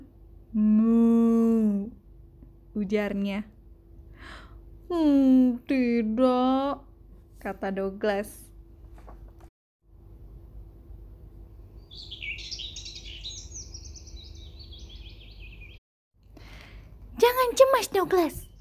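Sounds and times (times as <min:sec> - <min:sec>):
low steady hum: 0:00.0 - 0:18.5
speech: 0:02.8 - 0:03.6, 0:04.2 - 0:06.8, 0:07.4 - 0:08.5, 0:17.9 - 0:18.5
small lively bird chirping in high twittering notes: 0:11.8 - 0:15.8.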